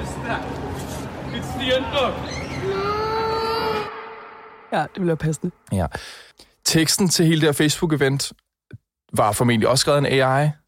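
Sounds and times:
speech: 0:00.3 - 0:03.1, 0:04.7 - 0:08.4, 0:09.1 - 0:10.6
children crying and whimpering: 0:02.5 - 0:04.0.

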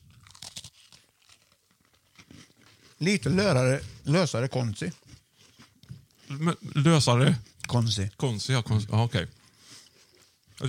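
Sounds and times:
person chewing a cookie: 0:00.0 - 0:10.6
speech: 0:03.0 - 0:05.0, 0:06.4 - 0:09.4.

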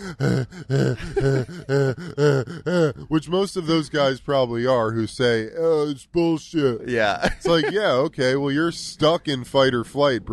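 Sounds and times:
laughter: 0:00.0 - 0:02.9, 0:07.2 - 0:08.1
person imitating shallow panicked breathing: 0:00.0 - 0:03.1
speech: 0:00.0 - 0:10.3.

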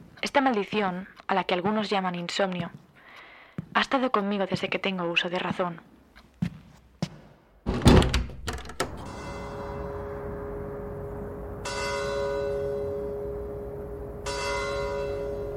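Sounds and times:
speech: 0:00.4 - 0:02.8, 0:03.8 - 0:05.9
sharp knocks and thuds: 0:07.7 - 0:09.1
large cathedral bells tolling: 0:08.8 - 0:15.5.

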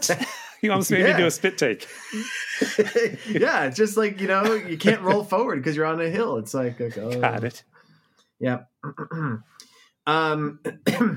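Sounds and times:
laughter: 0:00.0 - 0:05.6
speech: 0:00.0 - 0:07.7, 0:08.4 - 0:11.1
person clearing throat: 0:10.6 - 0:11.1.

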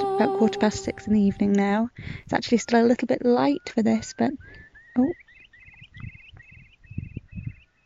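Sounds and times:
speech: 0:00.2 - 0:05.2
low rumbling wind: 0:00.6 - 0:07.8
curlew calling: 0:02.5 - 0:07.8.

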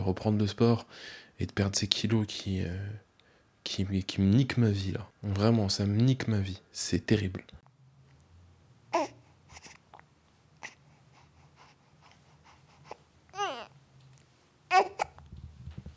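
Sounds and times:
speech: 0:00.0 - 0:03.0, 0:03.6 - 0:07.6, 0:08.9 - 0:09.2
baby crying and babbling: 0:08.9 - 0:09.8, 0:12.9 - 0:13.8, 0:14.7 - 0:15.2
baby breathing softly: 0:09.0 - 0:10.0, 0:10.6 - 0:13.7.

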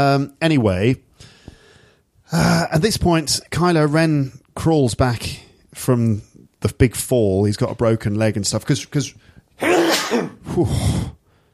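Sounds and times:
speech: 0:00.0 - 0:01.3, 0:02.3 - 0:11.2
man sneezing: 0:09.6 - 0:11.2.

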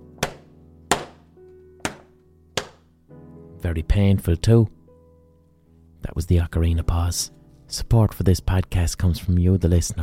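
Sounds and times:
book thumped against head in a small echoing room: 0:00.2 - 0:02.9
speech: 0:03.6 - 0:04.8, 0:06.0 - 0:10.0.

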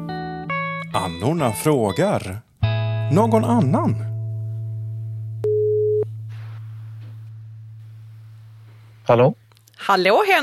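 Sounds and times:
speech: 0:01.0 - 0:02.5, 0:03.1 - 0:04.1, 0:09.1 - 0:10.4
low electrical hum: 0:03.4 - 0:10.4
telephone ringback tone while calling: 0:05.4 - 0:06.1
rustling noise: 0:06.1 - 0:09.2.

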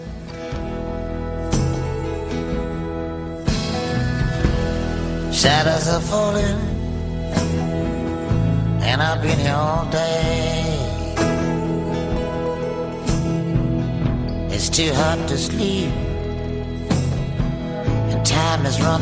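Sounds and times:
folk-rock song: 0:00.0 - 0:18.9
strummed guitar chords: 0:00.0 - 0:18.9
sustained harmonic backing: 0:00.0 - 0:18.9
man singing over a band: 0:05.2 - 0:13.0, 0:14.3 - 0:18.9
speech: 0:05.4 - 0:06.7, 0:08.8 - 0:10.8, 0:14.6 - 0:16.0, 0:18.2 - 0:18.9.

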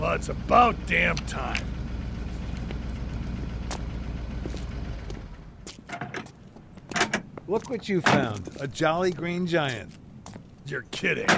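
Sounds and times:
blue truck engine sputtering in the distance: 0:00.0 - 0:11.3
speech: 0:00.1 - 0:01.7, 0:07.5 - 0:10.0, 0:10.7 - 0:11.3
sharp metallic clanks: 0:06.9 - 0:07.3.

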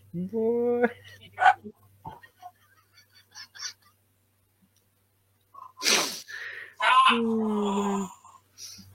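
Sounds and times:
speech: 0:00.1 - 0:01.8, 0:07.1 - 0:08.1
dog barking: 0:01.4 - 0:01.6.

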